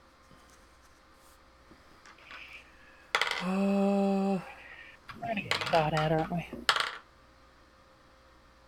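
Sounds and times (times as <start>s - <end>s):
dice rolling on a table: 2.0s - 3.7s, 5.0s - 7.1s
speech: 5.7s - 6.8s.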